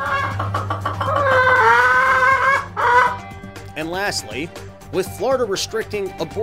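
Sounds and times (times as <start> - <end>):
chicken clucking and squawking: 0.0 - 3.2
speech: 3.8 - 6.4.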